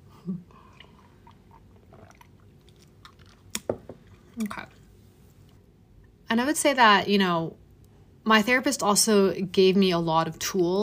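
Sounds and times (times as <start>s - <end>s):
person sipping tea: 0.2s - 4.9s
speech: 4.4s - 4.8s, 6.3s - 7.6s, 8.2s - 10.8s.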